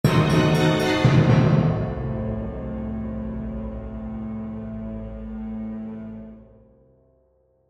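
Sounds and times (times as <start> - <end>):
dramatic suspenseful orchestral accent: 0.0 - 6.6
glockenspiel: 0.1 - 2.5.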